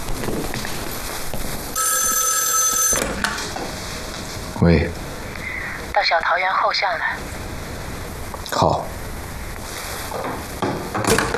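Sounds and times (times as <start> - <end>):
steady noise: 0.0 - 11.3
telephone bell ringing: 1.8 - 3.4
speech: 4.6 - 5.0, 6.1 - 7.4.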